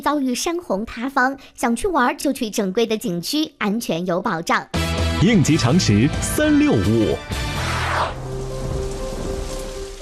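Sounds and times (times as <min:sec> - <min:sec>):
speech: 0:00.0 - 0:08.2
rumbling thunder: 0:08.0 - 0:09.9
heavy rain: 0:08.1 - 0:09.9.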